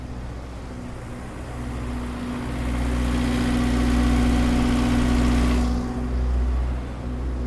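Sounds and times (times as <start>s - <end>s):
two tour bus generators running side by side: 0.0s - 7.4s.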